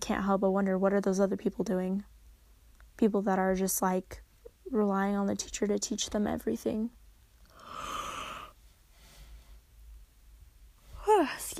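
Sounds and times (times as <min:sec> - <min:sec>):
quiet hiss: 0:00.0 - 0:11.5
speech: 0:00.1 - 0:02.2, 0:03.0 - 0:07.0, 0:11.2 - 0:11.5
person yawning: 0:07.6 - 0:08.5.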